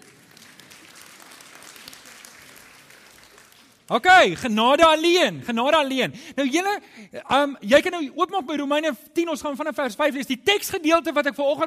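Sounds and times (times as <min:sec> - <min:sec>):
audience applauding: 0:00.0 - 0:04.1
speech: 0:03.9 - 0:11.6.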